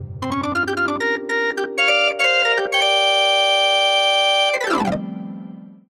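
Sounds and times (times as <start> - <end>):
percussive organ: 0.0 - 4.0.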